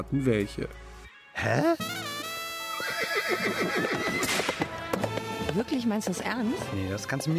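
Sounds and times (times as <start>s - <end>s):
speech: 0.0s - 2.0s, 3.3s - 4.4s, 5.6s - 7.3s
horse neighing: 2.7s - 4.9s.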